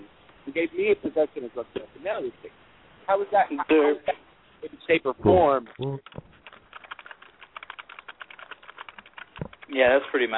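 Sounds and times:
speech: 0.5s - 6.3s, 9.7s - 10.3s
typing on a computer keyboard: 6.0s - 10.3s.

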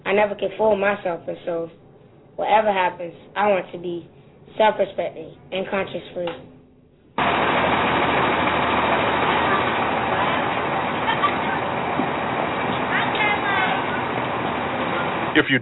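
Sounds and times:
speech: 0.1s - 1.8s, 2.4s - 6.5s, 15.4s - 15.6s
school bus engine idling: 7.2s - 15.6s
elementary and middle school children chattering exiting bus: 8.2s - 15.4s.

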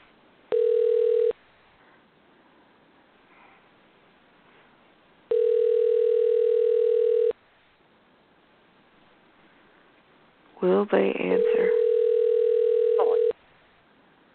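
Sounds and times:
electronic telephone tones on a call being placed: 0.5s - 1.3s, 5.3s - 7.3s, 11.4s - 13.3s
speech: 10.9s - 11.8s.

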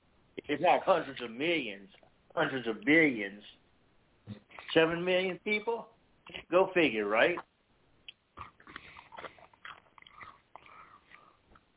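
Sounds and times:
speech: 0.5s - 3.6s, 4.3s - 7.5s
person chewing wetly near the microphone: 7.4s - 11.7s.

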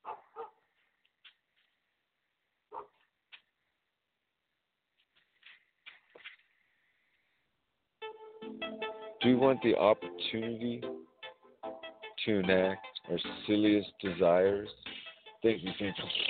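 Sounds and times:
dog barking through a small speaker: 0.0s - 0.6s, 2.7s - 3.0s
speech: 9.2s - 11.1s, 12.2s - 14.8s, 15.4s - 16.2s.

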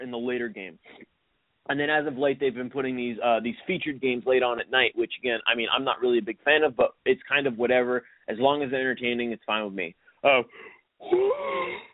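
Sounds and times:
speech: 0.1s - 1.1s, 1.7s - 11.9s
person yawning: 10.5s - 11.9s.

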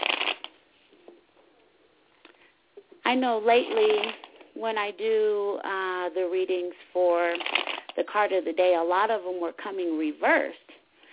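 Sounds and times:
speech: 3.1s - 10.7s
tarot cards being shuffled: 3.7s - 4.4s.

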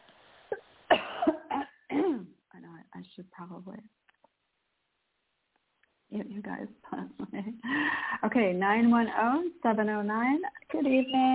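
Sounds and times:
man clearing his throat: 0.9s - 2.2s
speech: 3.2s - 4.1s, 6.1s - 11.3s.

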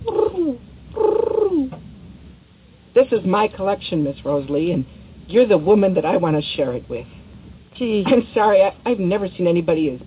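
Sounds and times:
pigeon call blown by hand cooing: 0.0s - 1.8s
speech: 3.1s - 7.2s, 7.8s - 10.0s.

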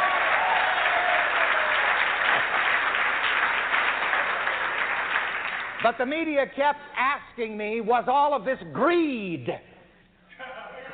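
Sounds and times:
sustained applause from a large audience: 0.0s - 5.8s
speech: 5.8s - 9.7s.

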